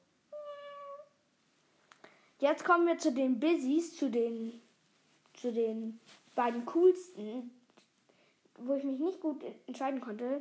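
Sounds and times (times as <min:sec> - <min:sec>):
cat meowing: 0:00.3 - 0:01.1
speech: 0:02.4 - 0:04.6, 0:05.4 - 0:07.6, 0:08.6 - 0:10.3.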